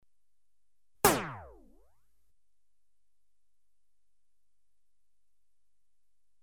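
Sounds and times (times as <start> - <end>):
electronically generated variable velocity gun single shot: 1.0 - 1.8.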